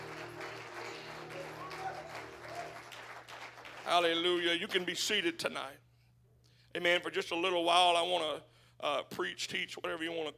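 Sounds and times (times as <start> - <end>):
congregation clapping hands: 0.0 - 5.0
speech: 3.9 - 5.8, 6.8 - 10.3.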